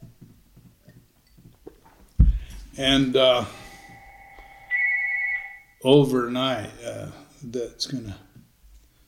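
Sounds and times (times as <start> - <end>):
speech: 2.8 - 3.6, 5.8 - 8.3
electronic phone ringtone: 3.5 - 5.7.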